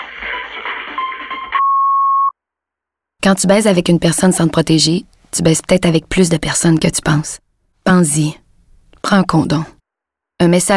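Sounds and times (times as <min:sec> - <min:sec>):
electronic answering machine beep tone after the greeting: 0:01.0 - 0:02.3
speech: 0:03.2 - 0:08.4, 0:09.0 - 0:09.8, 0:10.4 - 0:10.7.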